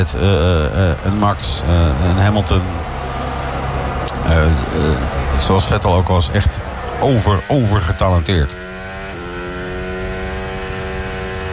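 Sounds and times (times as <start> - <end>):
speech: 0.0 - 2.9, 4.3 - 8.7
Mercedes Formula 1 car engine screaming at full revs on track: 0.0 - 10.3.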